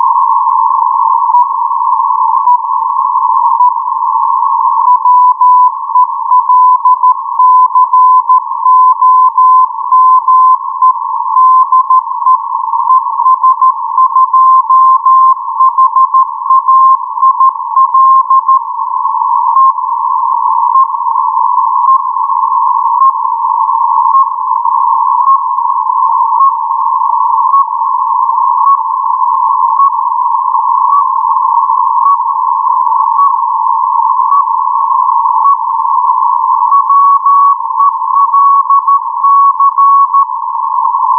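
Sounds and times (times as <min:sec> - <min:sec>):
CW morse code beacon tones: 0:00.2 - 0:41.1.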